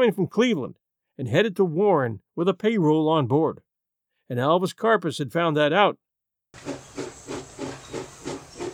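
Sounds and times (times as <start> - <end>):
speech: 0.0 - 3.6, 4.3 - 6.8
steam locomotive chuffing: 6.6 - 8.7.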